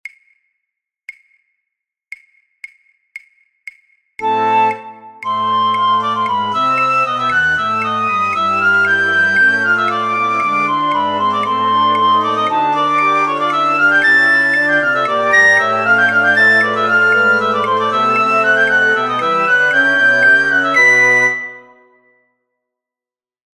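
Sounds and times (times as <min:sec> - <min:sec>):
flute orchestra playing a piccolo part: 0:04.2 - 0:22.0.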